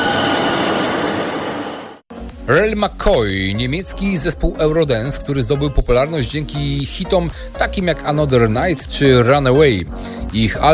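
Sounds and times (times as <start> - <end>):
express train pulling into a station platform: 0.0 - 2.0
speech: 2.5 - 10.7.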